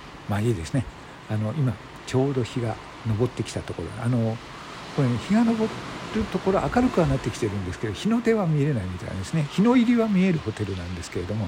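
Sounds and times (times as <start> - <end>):
ocean waves with a constant soft roar: 0.0 - 11.4
speech: 0.3 - 11.4.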